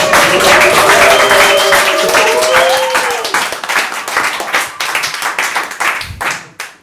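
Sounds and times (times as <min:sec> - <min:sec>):
cheers and whistles: 0:00.0 - 0:04.6
room full of people applauding: 0:00.0 - 0:06.8.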